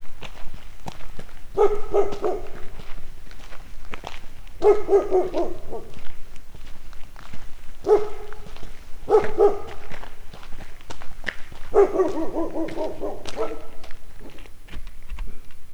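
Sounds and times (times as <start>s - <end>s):
approaching footsteps at a zoo: 0.0s - 15.7s
dog at a zoo: 1.5s - 3.0s, 4.0s - 6.2s, 7.8s - 10.2s, 11.6s - 14.4s.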